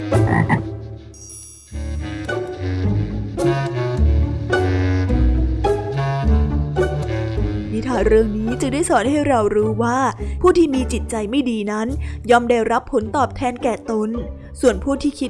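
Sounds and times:
speech: 0:00.0 - 0:00.7, 0:08.0 - 0:15.2
frog croaking: 0:00.0 - 0:00.8
steady tonal music-like background: 0:00.0 - 0:15.2.

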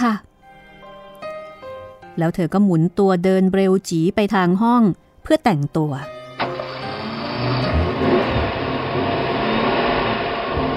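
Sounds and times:
speech: 0:02.2 - 0:06.2, 0:07.4 - 0:07.8
car driving along: 0:06.4 - 0:10.7.

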